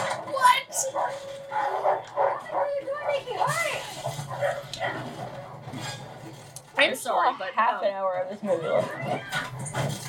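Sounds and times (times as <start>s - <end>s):
several dogs barking and yipping: 0.8s - 5.8s
speech: 7.4s - 10.0s.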